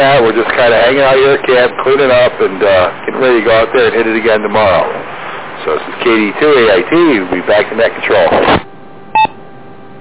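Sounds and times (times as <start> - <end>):
faint radio static hiss: 0.0 - 8.7
speech: 0.0 - 8.7
two-tone electronic beep on a radio transmission: 9.1 - 9.4.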